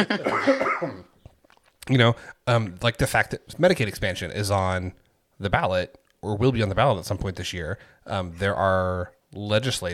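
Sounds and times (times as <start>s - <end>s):
speech: 0.0s - 1.1s, 1.9s - 9.9s
person coughing from a residual post-viral cough: 0.0s - 1.2s.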